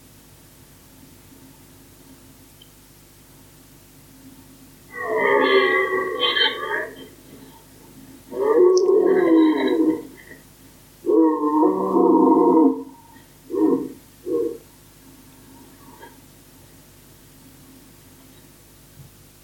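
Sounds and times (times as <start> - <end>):
deer stag short grunting calls: 4.9 - 7.7, 8.3 - 10.4, 11.1 - 14.7
several deer stags bellowing back and forth: 4.9 - 10.4, 11.0 - 14.7.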